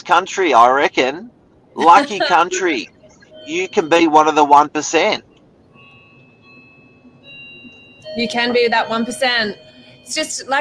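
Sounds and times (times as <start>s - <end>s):
speech: 0.0s - 5.3s, 8.2s - 10.6s
low hum: 0.0s - 10.6s
laughter: 1.8s - 2.8s
faint doorbell chiming: 3.2s - 4.6s, 5.7s - 10.6s.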